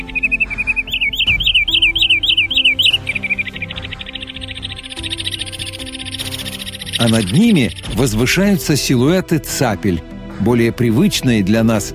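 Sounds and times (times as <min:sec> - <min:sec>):
Wood Sandpiper calling with sharp high whistled notes: 0:00.0 - 0:08.1
speech: 0:07.0 - 0:11.9.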